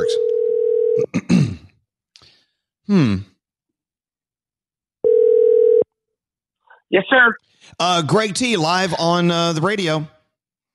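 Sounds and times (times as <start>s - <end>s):
telephone dial tone: 0.1s - 1.0s, 5.0s - 5.9s
speech: 2.9s - 3.3s, 6.9s - 10.2s
person sighing: 2.9s - 3.4s.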